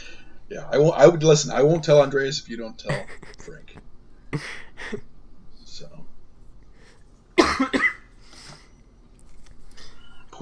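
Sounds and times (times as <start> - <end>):
speech: 0.5 - 5.1
laughter: 1.5 - 5.0
person coughing: 2.9 - 3.8, 4.4 - 5.0, 7.4 - 8.6.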